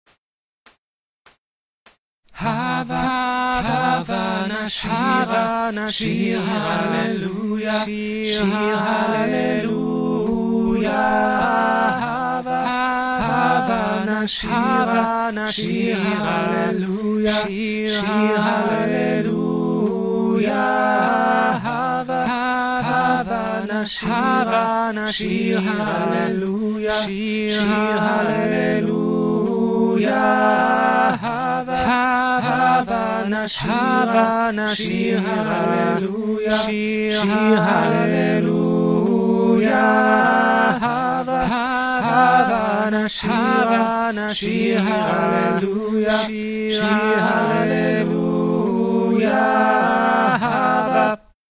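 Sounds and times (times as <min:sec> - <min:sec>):
choir singing all together: 0:02.4 - 0:51.2.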